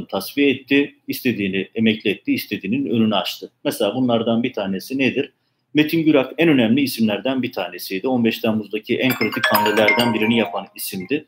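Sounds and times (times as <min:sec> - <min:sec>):
speech: 0:00.0 - 0:11.2
phone electronic ringtone or notification chime: 0:09.1 - 0:11.1.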